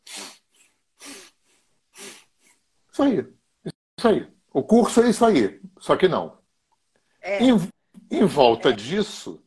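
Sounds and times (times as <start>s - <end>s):
sharp loud inhalations in circular breathing demonstration: 0.0s - 2.7s
speech: 3.0s - 6.4s, 7.2s - 9.4s.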